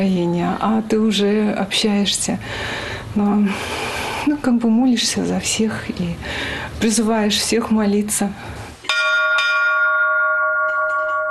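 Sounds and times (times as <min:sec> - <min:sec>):
speech: 0:00.0 - 0:08.6
church bells striking with rich resonant tones: 0:08.9 - 0:11.2.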